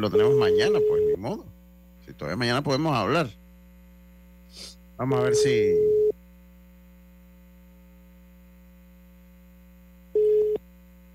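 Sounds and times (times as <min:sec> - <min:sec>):
speech: 0:00.0 - 0:03.4, 0:04.5 - 0:06.0
low electrical hum: 0:00.0 - 0:11.1
short steady telephone tones: 0:00.1 - 0:01.2, 0:10.2 - 0:10.6.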